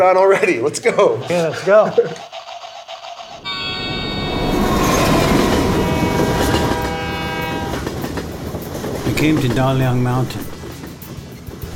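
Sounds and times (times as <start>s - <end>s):
speech: 0.0s - 2.3s, 9.2s - 10.5s
slow train rolling along rails: 3.3s - 11.7s
high sustained metallic tones: 3.4s - 8.8s.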